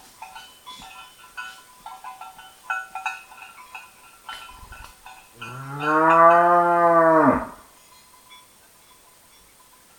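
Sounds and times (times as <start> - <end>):
Bos taurus mooing: 5.4 - 7.6.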